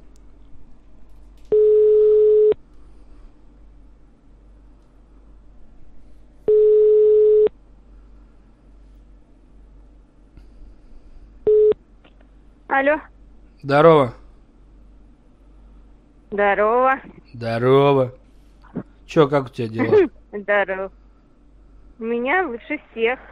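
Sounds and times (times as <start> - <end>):
low constant hum: 0.0 - 23.3
phone ringback tone while a call is being placed: 1.5 - 2.6, 6.5 - 7.5, 11.5 - 11.8
speech: 12.8 - 14.2, 16.3 - 18.2, 19.1 - 21.0, 22.0 - 23.3.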